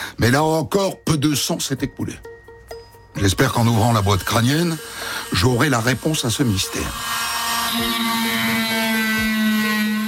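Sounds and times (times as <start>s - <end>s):
speech: 0.2s - 2.4s, 3.2s - 8.0s
plaster saw grinding through skull bone: 3.2s - 10.0s.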